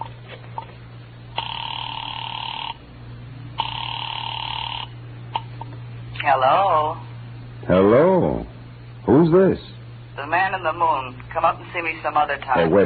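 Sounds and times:
telephone ring tones through a tinny line: 1.4 - 2.8, 3.6 - 5.0
speech: 6.3 - 7.1, 7.7 - 8.5, 9.1 - 12.8.

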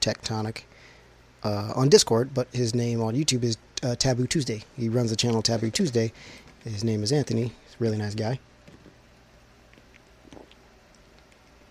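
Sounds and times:
speech: 0.0 - 0.7, 1.4 - 8.5
faint steady background: 0.0 - 11.6
person sipping water: 9.7 - 11.6
soft wet mouth clicks: 9.7 - 11.6
gulp: 10.2 - 10.6.

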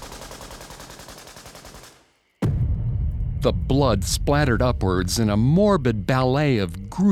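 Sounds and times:
rapid automatic gunfire: 0.0 - 2.1
loud booming blast: 2.4 - 5.7
speech: 3.4 - 7.0.

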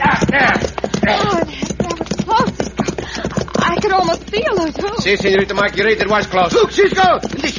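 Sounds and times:
horse hooves clip-clopping: 0.0 - 7.5
speech: 5.0 - 7.5.

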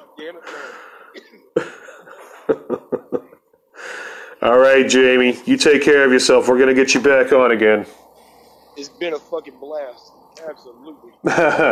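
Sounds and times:
speech: 0.3 - 1.4, 4.4 - 8.0, 8.8 - 11.7
strained breathy intake: 0.4 - 1.2, 3.7 - 4.4, 7.9 - 8.8
person coughing hard after smoking: 1.0 - 2.4
laughter: 1.6 - 3.4, 11.1 - 11.7.

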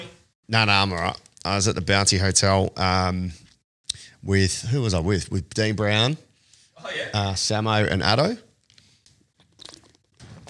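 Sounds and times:
speech: 0.5 - 3.4, 4.2 - 8.5
person sipping water: 8.6 - 10.4
slurping water: 8.6 - 10.4
gulp of water: 9.4 - 10.4
person swallowing water: 9.4 - 10.4.

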